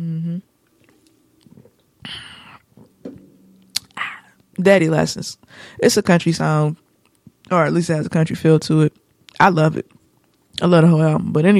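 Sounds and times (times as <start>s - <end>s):
person swallowing: 0.0s - 4.6s
person sipping a drink: 0.7s - 2.9s, 3.7s - 4.5s
speech: 4.6s - 6.8s, 7.5s - 10.0s, 10.6s - 11.5s.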